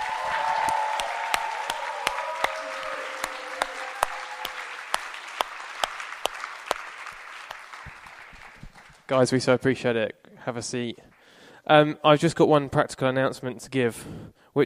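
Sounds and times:
audience applause for event staff: 0.0s - 9.1s
scattered sharp individual claps: 0.0s - 9.1s
speech: 9.1s - 11.1s, 11.7s - 14.6s.

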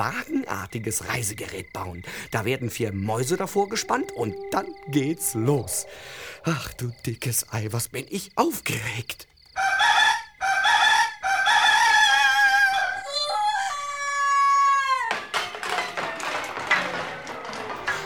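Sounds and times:
speech: 0.0s - 9.7s
rooster crowing after sunrise: 3.3s - 6.7s, 9.6s - 17.5s.

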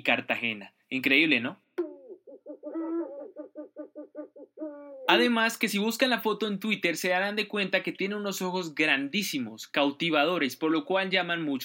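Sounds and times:
speech: 0.0s - 1.6s, 5.1s - 11.6s
owl hooting: 1.8s - 5.1s.

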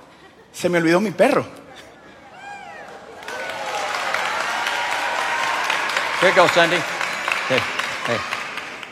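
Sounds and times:
speech: 0.6s - 1.6s, 6.2s - 8.4s
large crowd clapping: 2.8s - 8.9s.

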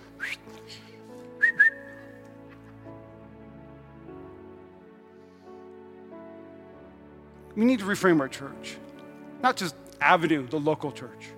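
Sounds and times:
person whistling a short tune: 0.1s - 2.2s
speech: 7.6s - 11.3s.

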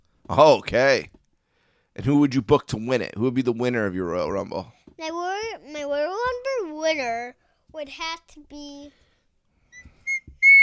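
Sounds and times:
speech: 0.3s - 1.2s, 2.0s - 9.0s
person whistling: 9.7s - 10.6s.

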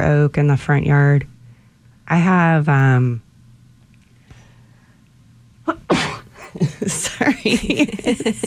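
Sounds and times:
speech: 0.0s - 1.3s, 2.1s - 3.2s, 6.6s - 8.4s
loud sneeze in a dusty space: 5.7s - 6.6s.

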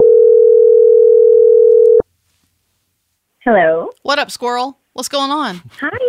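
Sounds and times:
electronic ringback tone from a phone line on an outgoing call: 0.0s - 2.0s
speech: 3.4s - 6.0s.

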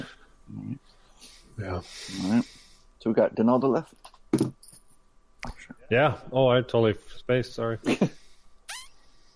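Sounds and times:
speech: 1.6s - 4.6s, 5.9s - 8.2s
man's lips making a high-pitched upward-sweeping squeak: 8.7s - 9.0s.

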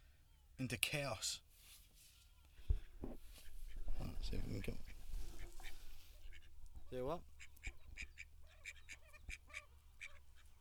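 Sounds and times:
speech: 0.6s - 1.4s, 4.0s - 4.9s, 6.9s - 8.1s
ducks quacking wanting food: 3.4s - 10.6s.

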